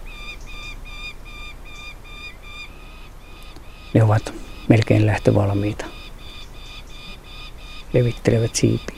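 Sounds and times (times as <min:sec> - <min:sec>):
four large nearly fledged gyrfalcon chicks squabbling over food in a nest: 0:00.0 - 0:08.9
speech: 0:03.9 - 0:06.0, 0:07.9 - 0:08.9.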